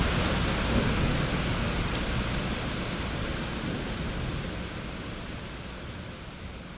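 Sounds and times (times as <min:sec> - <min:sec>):
heavy rain downpour: 0:00.0 - 0:06.7.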